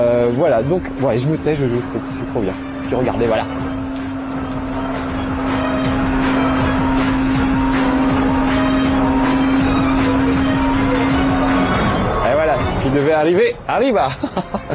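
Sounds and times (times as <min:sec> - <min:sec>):
speech: 0:00.0 - 0:03.7, 0:13.0 - 0:14.7
video game car engine drone: 0:00.0 - 0:14.7
laughter: 0:14.0 - 0:14.7.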